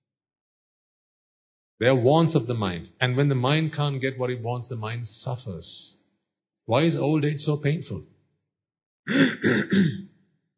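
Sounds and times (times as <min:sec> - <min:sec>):
speech: 0:01.8 - 0:06.0, 0:06.7 - 0:08.1, 0:09.0 - 0:10.1
person clearing throat: 0:09.1 - 0:10.1.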